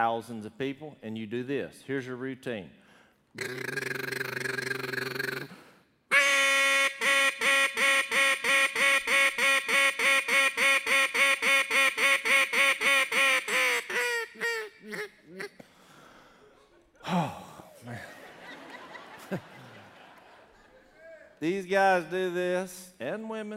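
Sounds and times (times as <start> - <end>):
speech: 0.0 - 2.8, 3.4 - 4.3, 21.7 - 23.5
duck call blown in a competition-style routine in Stuttgart, Arkansas: 3.4 - 15.6
laughter: 16.6 - 21.4.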